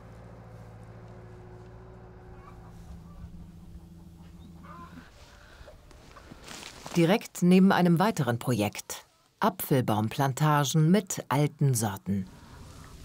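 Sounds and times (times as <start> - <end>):
steady low engine hum: 0.0 - 6.9
hens clucking in a mobile coop: 2.0 - 6.4
speech: 7.0 - 12.4.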